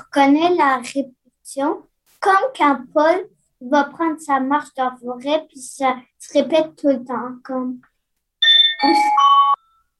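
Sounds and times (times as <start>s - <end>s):
speech: 0.2s - 7.9s, 8.8s - 9.4s
electronic school bell chime: 8.4s - 9.9s.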